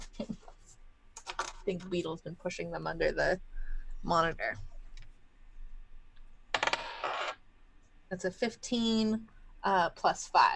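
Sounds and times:
speech: 1.7s - 4.7s, 8.1s - 10.5s
dice rolled on a hard tabletop for a tabletop game: 6.5s - 7.4s.

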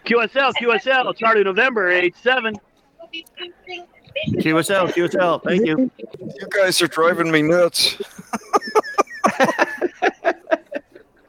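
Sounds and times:
laughter: 0.0s - 1.2s, 4.1s - 11.2s
speech: 0.1s - 8.8s, 9.4s - 9.6s
about 20 sea lions barking in the background of an amateur radio transmission: 4.1s - 7.0s.

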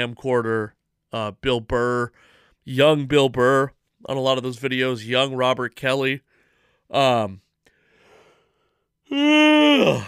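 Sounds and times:
speech: 0.0s - 6.3s, 6.9s - 7.4s, 9.1s - 10.0s
person yawning: 9.1s - 10.0s.

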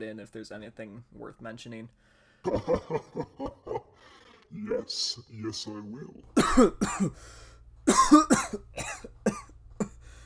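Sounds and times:
speech: 0.0s - 9.2s
laughter: 2.4s - 4.3s
person clearing throat: 6.4s - 7.2s, 7.9s - 10.0s
person coughing: 6.4s - 7.2s, 7.9s - 10.0s.

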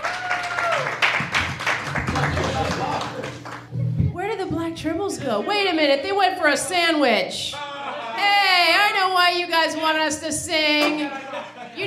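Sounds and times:
audience applauding: 0.0s - 3.7s
laughter: 2.0s - 3.5s, 5.0s - 8.8s, 10.8s - 11.8s
speech: 4.8s - 7.6s, 9.2s - 11.8s.

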